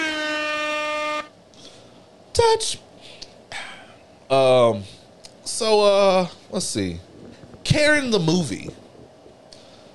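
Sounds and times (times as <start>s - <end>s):
air horn blast: 0.0s - 1.4s
speech: 2.4s - 2.9s, 4.3s - 7.1s, 7.7s - 8.8s.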